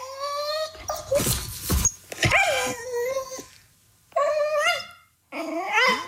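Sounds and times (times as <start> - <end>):
dog whining and grumbling in cat-like tones: 0.0 - 6.0
rustling: 0.7 - 3.8.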